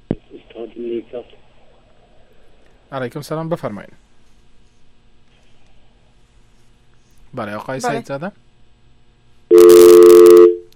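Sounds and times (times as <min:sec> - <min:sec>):
speech: 0:00.6 - 0:01.4, 0:02.9 - 0:04.0, 0:07.3 - 0:08.4
steady electronic telephone tone after a dropped phone call: 0:09.5 - 0:10.7.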